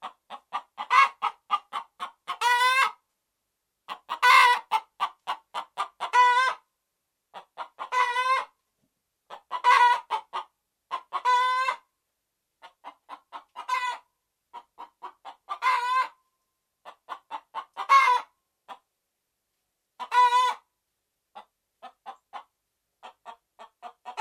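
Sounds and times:
red junglefowl clucking and squawking harshly: 0.0 - 3.0, 3.9 - 6.6, 7.3 - 8.6, 9.3 - 11.9, 12.6 - 16.2, 16.8 - 18.8, 20.0 - 20.7, 21.4 - 24.1.

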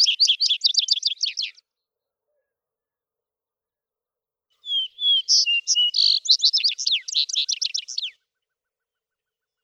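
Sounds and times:
vesper sparrow song with whistled notes and trill: 0.0 - 1.8, 4.6 - 9.6.

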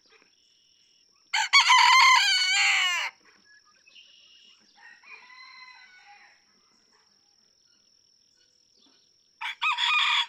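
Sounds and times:
small birds chirping and calling: 0.0 - 1.4, 3.2 - 9.4
red junglefowl rooster crowing cock-a-doodle-doo: 1.4 - 3.2, 4.8 - 6.4, 9.4 - 10.2.

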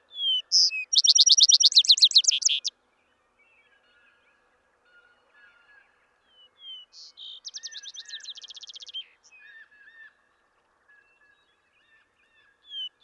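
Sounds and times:
vesper sparrow song with rapid bright trill and soft slurred notes: 0.0 - 2.7, 6.6 - 9.2.

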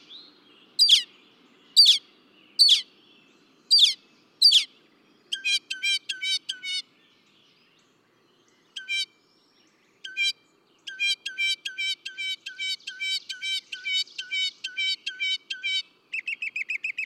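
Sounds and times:
northern mockingbird singing: 0.0 - 17.0.

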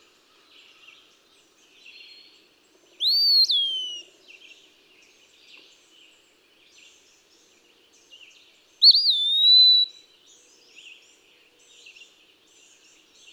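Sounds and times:
quiet bird chirps: 0.0 - 13.3
Eastern wood-pewee whistling: 3.0 - 4.0, 8.8 - 9.9.

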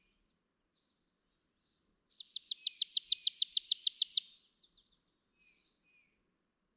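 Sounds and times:
chipping sparrow singing a fast even trill: 2.1 - 4.4.

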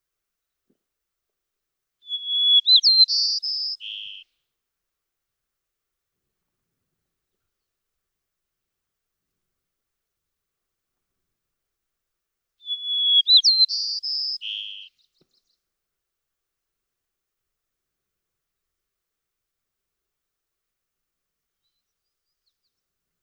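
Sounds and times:
white-crowned sparrow singing: 2.0 - 4.2, 12.6 - 15.6.

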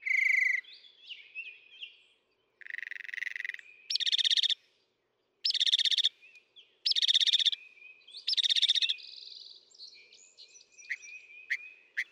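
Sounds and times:
Northern mockingbird song: 0.0 - 4.6, 5.4 - 12.1.

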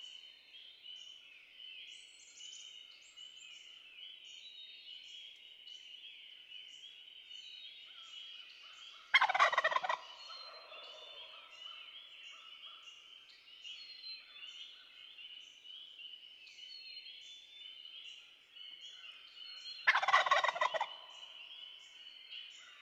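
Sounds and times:
small birds singing: 0.0 - 22.8
wild turkey gobbling: 9.1 - 11.2, 19.8 - 21.1.

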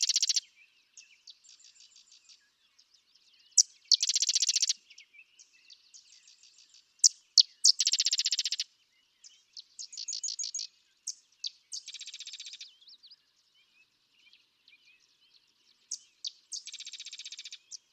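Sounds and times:
sedge wren chattering trills: 0.0 - 0.5, 3.6 - 4.8, 7.0 - 8.6, 9.6 - 12.7, 15.9 - 17.9.

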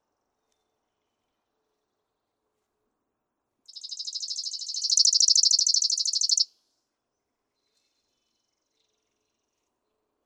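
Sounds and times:
Chipping Sparrow song trill: 3.7 - 6.4.

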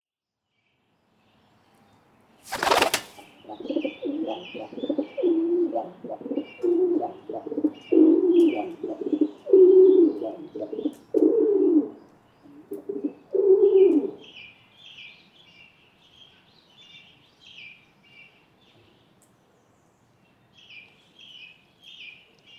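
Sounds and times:
rock pigeon: 2.5 - 14.2.

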